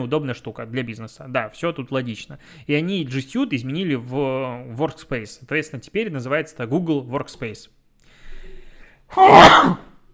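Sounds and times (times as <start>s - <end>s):
speech: 0.0s - 7.8s, 9.1s - 9.9s
person sneezing: 9.1s - 10.0s.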